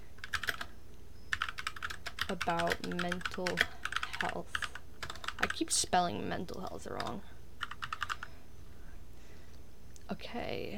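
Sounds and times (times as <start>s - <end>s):
typing on a clicky computer keyboard: 0.2s - 0.7s, 1.3s - 5.6s, 6.6s - 8.3s
speech: 2.3s - 4.6s, 5.5s - 7.3s, 10.1s - 10.7s.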